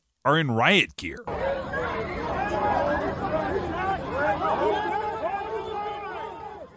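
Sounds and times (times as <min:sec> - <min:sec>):
speech: 0:00.2 - 0:01.4
crowd of protesters shouting: 0:01.3 - 0:06.7.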